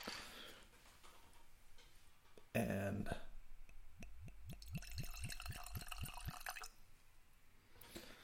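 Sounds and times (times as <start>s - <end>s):
speech: 2.6s - 3.3s
Old Pulteney 12-year-old whisky glugging from a bottle into a glass: 4.0s - 6.8s.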